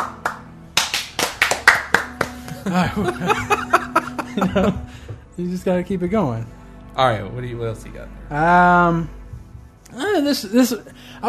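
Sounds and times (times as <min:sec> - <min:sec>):
sharp hand slaps of high fives: 0:00.0 - 0:02.6
brief laughter: 0:02.4 - 0:05.1
speech: 0:02.6 - 0:03.8, 0:04.4 - 0:09.2, 0:09.9 - 0:11.2.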